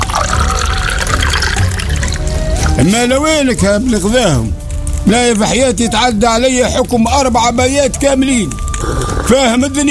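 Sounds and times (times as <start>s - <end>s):
tea poured into a glass: 0.0s - 2.8s
speech: 2.8s - 9.9s.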